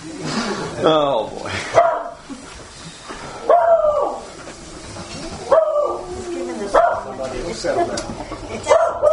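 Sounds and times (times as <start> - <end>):
speech: 0.8 - 1.8
dogs barking in short harmonic yelps: 1.7 - 2.2, 3.4 - 4.4, 5.4 - 7.2, 8.6 - 9.1.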